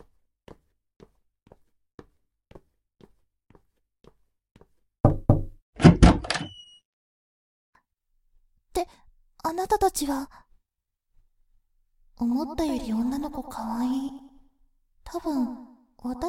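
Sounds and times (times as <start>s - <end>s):
soft evenly spaced footsteps: 0.0s - 4.8s
loud clatter of a door latch: 5.8s - 6.6s
door creaking open: 5.8s - 6.8s
speech: 9.5s - 10.4s, 12.2s - 14.2s, 15.1s - 16.2s.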